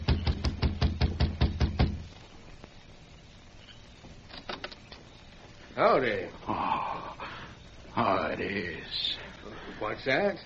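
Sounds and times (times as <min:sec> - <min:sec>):
firm knocking on a wooden door: 0:00.0 - 0:02.0
speech: 0:05.8 - 0:07.0, 0:08.0 - 0:09.2, 0:09.8 - 0:10.4.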